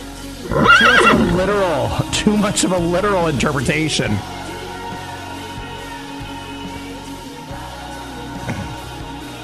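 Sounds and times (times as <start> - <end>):
horse whinnying: 0.4 - 2.0
speech: 1.4 - 4.4.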